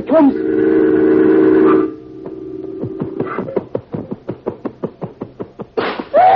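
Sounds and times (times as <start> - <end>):
speech: 0.0 - 0.8
sustained whistling tone: 0.0 - 3.5
brief noisy rush: 0.0 - 6.3.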